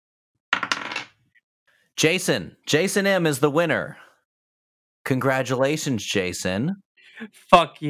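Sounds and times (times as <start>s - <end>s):
dice clattering across a hard surface: 0.6s - 1.1s
speech: 2.0s - 4.0s, 5.0s - 7.8s.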